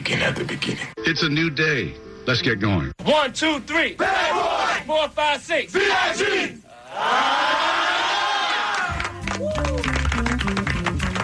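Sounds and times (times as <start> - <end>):
speech: 0.3 - 7.8
concert crowd cheering: 6.7 - 11.2
music with a steady bass line and percussive hits: 9.0 - 11.2.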